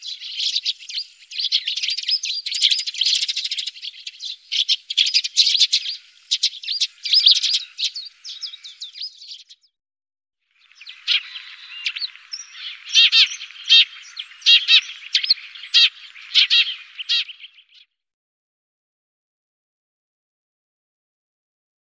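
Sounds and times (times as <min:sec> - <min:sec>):
Eurasian tree sparrow chirping: 0:00.0 - 0:09.7, 0:10.6 - 0:17.9.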